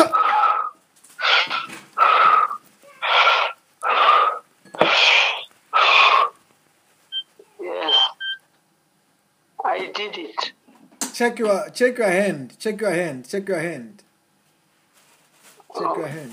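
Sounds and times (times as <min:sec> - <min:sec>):
heavy wheezy breathing in and out through the mouth by a stroke patient: 0:00.0 - 0:06.4
speech: 0:11.2 - 0:14.0.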